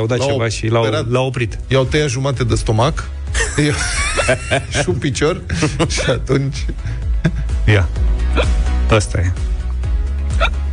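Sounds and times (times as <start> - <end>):
speech: 0.0 - 9.5
laughter: 3.3 - 7.5
hiccup: 10.4 - 10.6.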